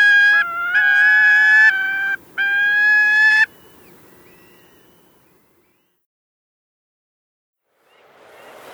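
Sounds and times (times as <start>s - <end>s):
gyrfalcon harsh chattering calls: 0.0s - 4.7s.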